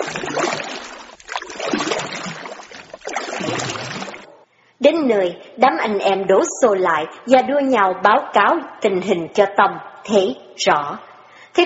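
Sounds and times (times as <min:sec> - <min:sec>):
floodwater churning and splashing as a small wooden boat is poled: 0:00.0 - 0:04.4
speech: 0:04.9 - 0:11.6.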